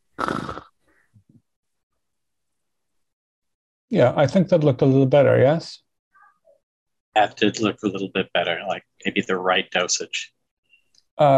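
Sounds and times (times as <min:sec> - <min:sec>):
person imitating snoring: 0:00.2 - 0:00.7
speech: 0:03.9 - 0:05.8, 0:07.2 - 0:10.4, 0:11.2 - 0:11.3.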